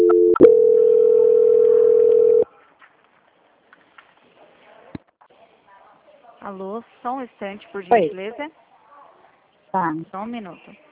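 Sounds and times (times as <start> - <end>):
telephone tone during a call transfer: 0.0 - 2.4
speech: 6.5 - 8.6, 9.7 - 10.9.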